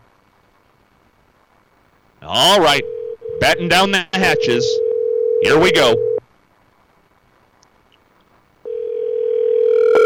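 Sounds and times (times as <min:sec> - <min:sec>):
speech: 0:02.2 - 0:04.8, 0:05.4 - 0:06.1
telephone ringing tone on an outgoing call: 0:02.6 - 0:06.2, 0:08.7 - 0:10.0.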